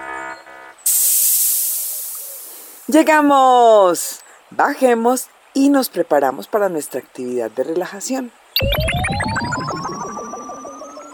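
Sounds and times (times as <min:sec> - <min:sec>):
hiss of released air from hatches opening: 0:00.9 - 0:02.9
speech: 0:02.9 - 0:08.9.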